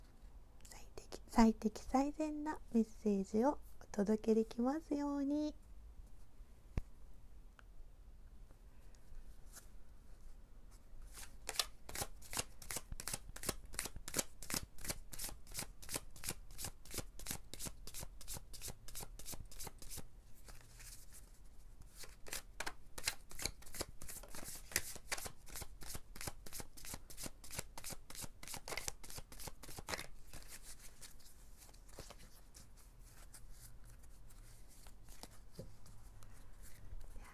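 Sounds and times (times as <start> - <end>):
speech: 1.4 - 5.6
deck of oracle cards being shuffled: 11.1 - 37.1.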